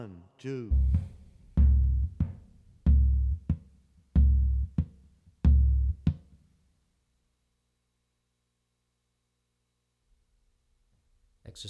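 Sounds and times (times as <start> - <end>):
surdo drum: 0.7 - 6.4.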